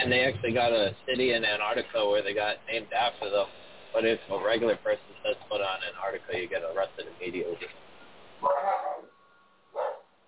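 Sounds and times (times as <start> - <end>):
faint hiss: 0.0 - 10.2
speech: 0.1 - 9.1
dog barking: 8.4 - 9.1, 9.7 - 10.1.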